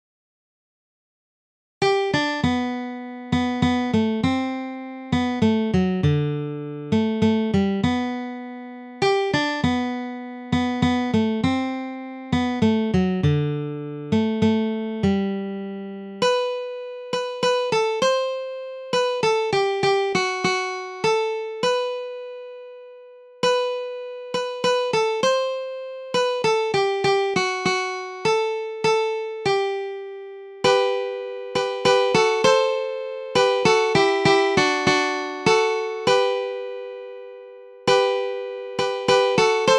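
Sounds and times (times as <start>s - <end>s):
guitar: 1.8s - 39.7s.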